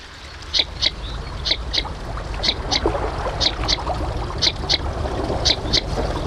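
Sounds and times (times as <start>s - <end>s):
constant wash of water: 0.0s - 6.2s
outdoor noise: 0.0s - 6.2s
northern shoveler duck calling in quick doubled notes on water: 0.5s - 2.8s, 3.4s - 4.8s, 5.4s - 6.0s.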